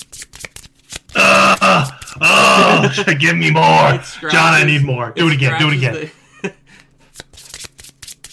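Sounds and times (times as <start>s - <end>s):
playing cards shuffled and snapped against a table: 0.0s - 1.2s, 7.1s - 8.3s
speech: 2.2s - 6.6s
laughter: 2.2s - 6.8s.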